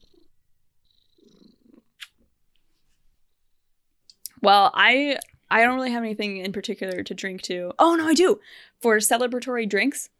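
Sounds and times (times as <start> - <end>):
cat purring: 0.0 - 2.0
speech: 4.4 - 10.1.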